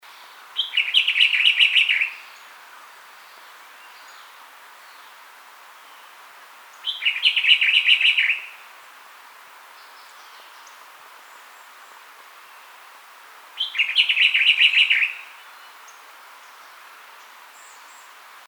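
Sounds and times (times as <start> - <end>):
blue-grey robin: 0.1 - 5.2, 5.8 - 8.9, 9.8 - 12.8, 13.6 - 18.1.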